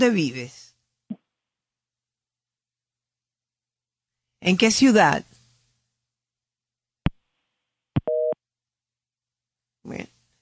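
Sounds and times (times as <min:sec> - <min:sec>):
speech: 0:00.0 - 0:00.6, 0:04.4 - 0:05.3, 0:09.8 - 0:10.1
busy tone after a dropped phone call: 0:08.1 - 0:08.4.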